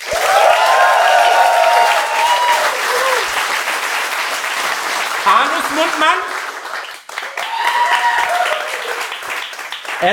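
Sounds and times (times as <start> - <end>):
whoops and cheers: 0.0 - 3.4, 7.2 - 9.2
crowd applause: 0.0 - 10.1
speech: 5.3 - 6.3.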